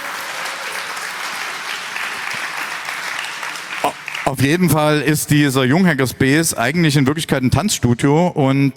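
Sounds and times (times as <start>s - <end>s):
audience applause: 0.0s - 4.8s
speech: 3.8s - 8.7s.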